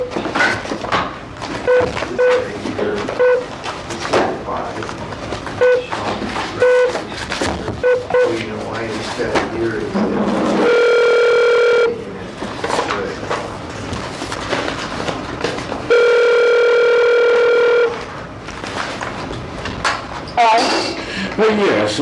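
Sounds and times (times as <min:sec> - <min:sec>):
room noise: 0:00.0 - 0:21.9
speech: 0:01.8 - 0:03.2
telephone ringing tone through a line on an outgoing call: 0:10.6 - 0:12.0, 0:15.9 - 0:18.0.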